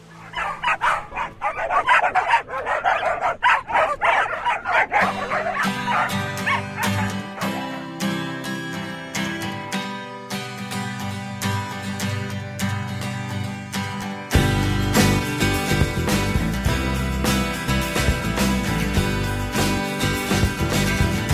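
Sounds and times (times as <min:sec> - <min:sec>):
dog barks and yips woven into a music track: 0:00.0 - 0:21.3
sustained tonal music with crisp percussive hits: 0:14.4 - 0:21.3.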